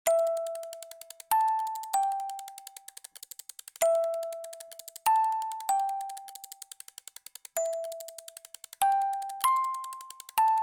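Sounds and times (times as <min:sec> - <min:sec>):
music box being operated: 0:00.1 - 0:10.6.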